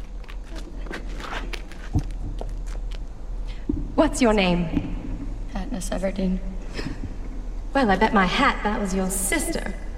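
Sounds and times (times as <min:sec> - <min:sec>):
footsteps climbing stone steps: 0:00.0 - 0:04.0
low hum: 0:00.0 - 0:09.9
speech: 0:04.0 - 0:04.9, 0:05.8 - 0:06.9, 0:07.7 - 0:09.8.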